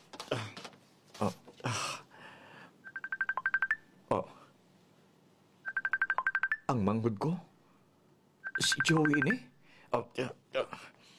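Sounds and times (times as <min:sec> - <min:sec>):
speech: 0:01.2 - 0:01.8, 0:06.7 - 0:07.5, 0:08.6 - 0:10.9
telephone dialing tones: 0:02.9 - 0:03.8, 0:05.7 - 0:06.7, 0:08.5 - 0:09.4.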